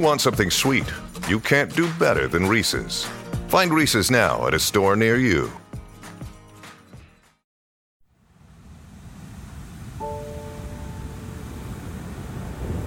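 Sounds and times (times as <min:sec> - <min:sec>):
speech: 0:00.0 - 0:05.6
music: 0:00.0 - 0:07.4, 0:10.0 - 0:11.8
surf on a beach: 0:08.6 - 0:12.8.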